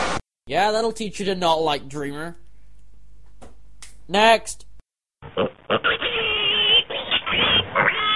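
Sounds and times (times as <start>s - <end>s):
speech: 0.5s - 2.4s, 4.1s - 4.7s
pig oinking and squealing: 5.3s - 8.1s.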